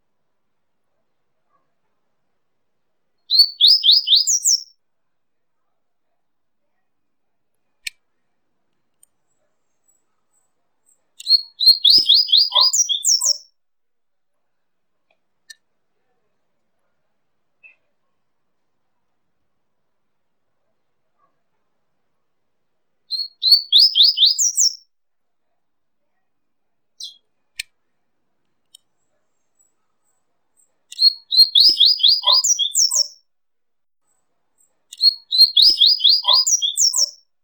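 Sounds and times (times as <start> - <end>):
coleirinho singing: 3.3 - 4.7, 11.2 - 13.4, 23.1 - 24.8, 30.9 - 33.2, 35.0 - 37.2.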